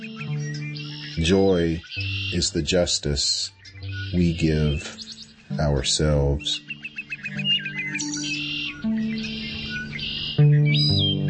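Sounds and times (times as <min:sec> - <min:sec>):
sparrow singing a whistled song: 0:00.0 - 0:11.2
speech: 0:01.2 - 0:06.7.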